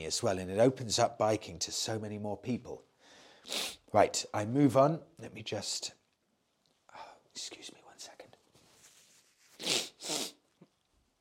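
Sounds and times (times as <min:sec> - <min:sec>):
speech: 0:00.0 - 0:06.0, 0:07.4 - 0:08.1
nose blowing: 0:03.4 - 0:03.8, 0:09.5 - 0:10.6.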